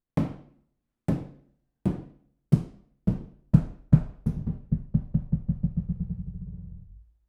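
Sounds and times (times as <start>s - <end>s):
solid rubber ball bouncing: 2.6s - 6.6s.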